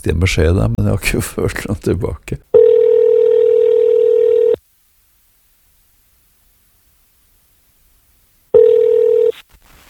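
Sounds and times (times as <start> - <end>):
speech: 0.0 - 2.5
telephone ringback tone: 2.6 - 4.6, 8.5 - 9.4.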